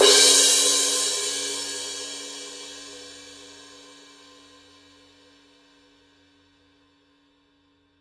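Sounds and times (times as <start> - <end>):
17 inch power crash cymbal edge hit: 0.0 - 5.0.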